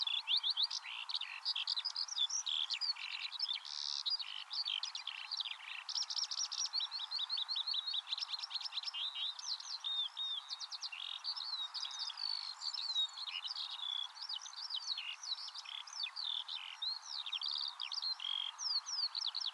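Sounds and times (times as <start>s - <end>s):
Eurasian skylark song: 0.0s - 19.5s.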